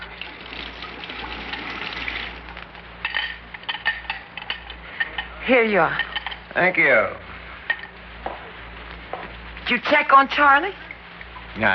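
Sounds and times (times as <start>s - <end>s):
water pouring into a glass: 0.0s - 2.6s
low hum: 0.0s - 11.7s
speech: 5.5s - 7.2s, 9.7s - 10.8s, 11.6s - 11.7s.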